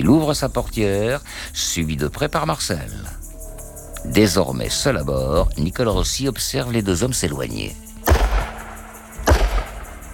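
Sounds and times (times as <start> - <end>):
speech: 0.0 - 3.2, 4.0 - 7.8
gunshots: 8.0 - 10.1.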